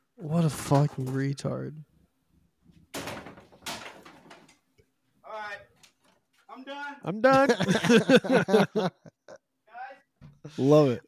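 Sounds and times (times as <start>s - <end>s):
speech: 0.2s - 1.9s, 6.6s - 9.2s, 10.5s - 11.0s
bedroom door being smashed hard: 2.9s - 4.6s
laughter: 7.2s - 9.4s.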